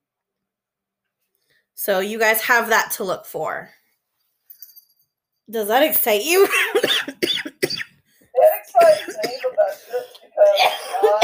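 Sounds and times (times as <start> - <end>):
speech: 1.8 - 3.8, 5.5 - 7.1
person coughing hoarsely: 6.4 - 11.2
raspy throat clearing: 7.1 - 11.2.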